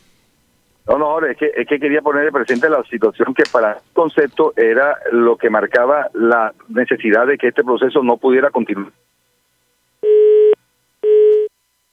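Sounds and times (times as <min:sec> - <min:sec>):
speech: 0:00.9 - 0:09.0
telephone busy signal beeps after a dropped call: 0:10.0 - 0:11.5.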